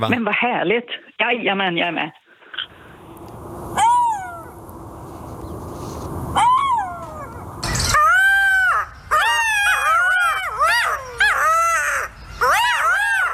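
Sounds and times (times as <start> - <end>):
speech: 0.0 - 2.2
golden jackals howling: 3.7 - 4.7, 6.3 - 13.3
golden jackals yipping and crying in chorus: 6.4 - 13.3.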